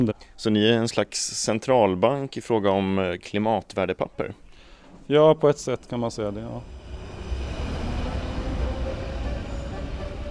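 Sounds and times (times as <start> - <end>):
speech: 0.0 - 4.4, 5.1 - 6.8
subway train in Brussels rumbling toward the city centre: 5.8 - 10.3.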